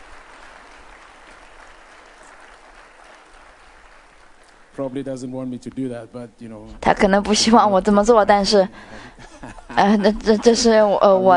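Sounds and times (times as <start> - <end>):
audience applauding: 0.0 - 5.0
speech: 4.8 - 11.3
laughter: 8.9 - 11.2.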